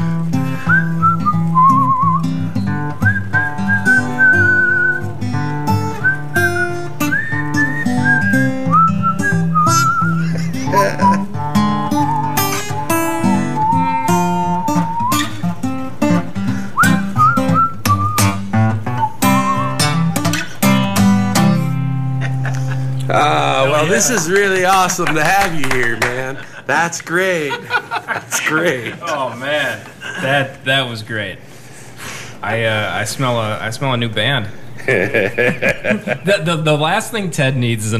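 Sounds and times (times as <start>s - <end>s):
instrumental accompaniment with guitar-like strums and bass: 0.0s - 23.1s
person whistling a clear wavering melody: 0.4s - 5.1s, 5.9s - 15.5s, 16.6s - 20.9s
laughter: 10.0s - 11.4s, 22.0s - 30.4s, 34.8s - 36.4s
speech: 24.0s - 27.8s, 28.4s - 31.5s, 32.4s - 37.9s.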